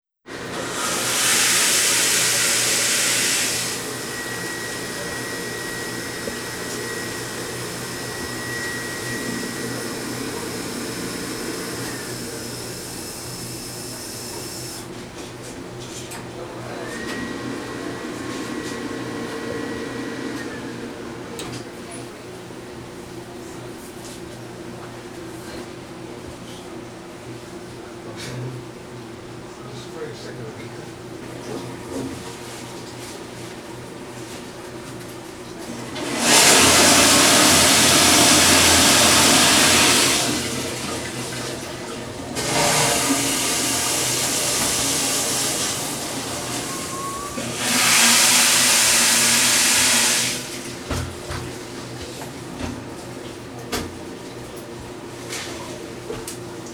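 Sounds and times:
public toilets ambience in New York City: 0:00.3 - 0:56.7.

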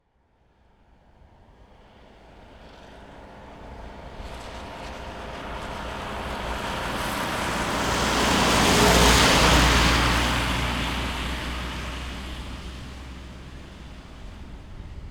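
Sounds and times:
Renault Master 2.3 dCi passing on wet asphalt at medium speed: 0:03.1 - 0:15.1.

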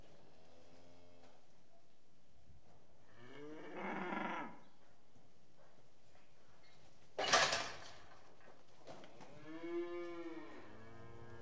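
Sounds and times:
restless cattle mooing indoors in a shed: 0:03.2 - 0:04.6, 0:09.4 - 0:11.3.

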